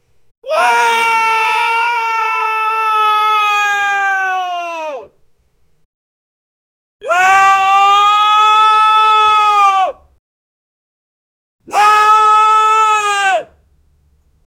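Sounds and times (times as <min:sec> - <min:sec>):
mild fearful scream: 0:00.4 - 0:05.2, 0:07.0 - 0:10.2, 0:11.6 - 0:13.6.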